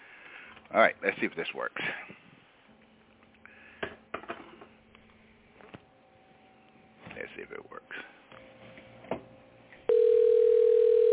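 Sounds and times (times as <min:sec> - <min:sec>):
speech: 0:00.7 - 0:02.2, 0:07.5 - 0:08.2
quiet telephone line hiss: 0:09.9 - 0:11.1
ringback tone of an outgoing telephone call: 0:09.9 - 0:11.1.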